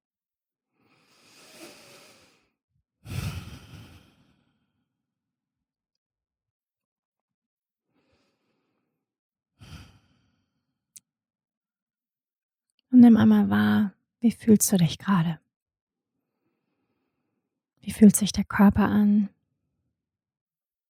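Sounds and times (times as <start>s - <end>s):
slow deep breathing in and out: 0.8s - 4.9s, 7.9s - 9.0s, 9.6s - 10.7s
speech: 13.0s - 15.4s, 17.8s - 19.4s.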